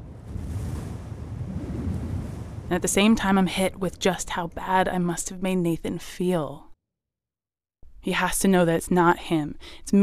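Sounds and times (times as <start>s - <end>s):
driving rain: 0.0s - 2.9s
gusty wind blowing straight off the ocean in driving rain: 0.0s - 4.0s
speech: 2.7s - 6.7s, 8.0s - 10.0s.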